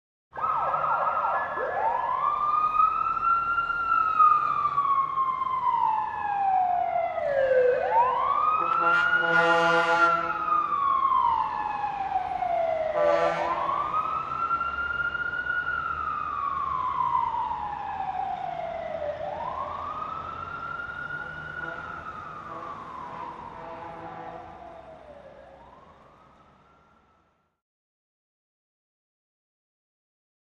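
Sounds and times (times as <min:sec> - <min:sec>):
distant fire truck siren: 0:00.3 - 0:27.6
distant fire truck honking: 0:08.5 - 0:10.8, 0:12.8 - 0:13.8, 0:21.2 - 0:24.8.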